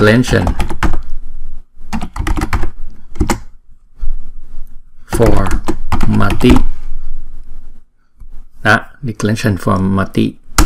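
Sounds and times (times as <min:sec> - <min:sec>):
speech: 0:00.0 - 0:00.7, 0:05.2 - 0:05.6, 0:06.3 - 0:06.7, 0:08.6 - 0:10.4
computer keyboard typing a search query: 0:00.2 - 0:01.0, 0:01.9 - 0:03.5, 0:05.1 - 0:06.6.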